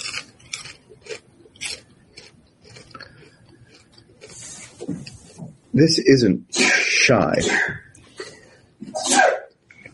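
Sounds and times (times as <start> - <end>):
speech: 5.8 - 7.8
person sneezing: 6.6 - 7.9, 8.8 - 9.5.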